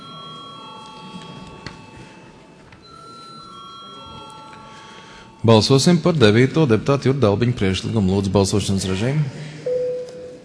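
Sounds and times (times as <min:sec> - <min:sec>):
parliamentary voting bell ringing: 0:00.0 - 0:06.1
low murmur and rustle of a large chamber: 0:00.0 - 0:10.4
speech: 0:05.4 - 0:09.5.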